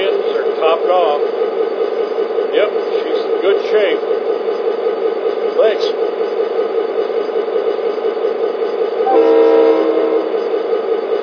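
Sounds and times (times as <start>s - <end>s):
freight train rumbling on rails: 0.0s - 11.2s
speech: 3.5s - 4.2s
horn-like tonal blast: 9.1s - 10.6s.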